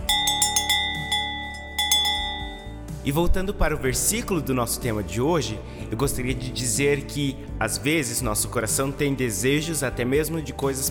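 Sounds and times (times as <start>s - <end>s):
cowbell ringing: 0.0s - 3.0s
speech: 3.1s - 10.8s.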